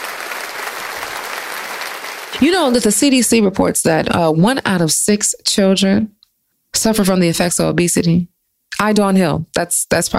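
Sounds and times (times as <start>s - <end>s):
audience applauding: 0.0s - 2.7s
speech: 2.4s - 6.2s, 6.8s - 10.1s.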